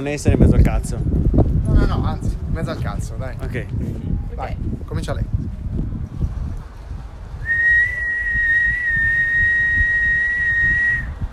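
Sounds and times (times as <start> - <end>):
speech: 0.0 - 5.4
person whistling one long steady note: 7.4 - 11.1.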